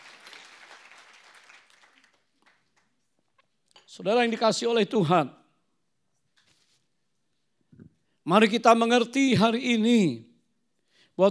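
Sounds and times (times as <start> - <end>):
crowd clapping: 0.0 - 3.3
speech: 4.0 - 5.4, 8.3 - 10.3.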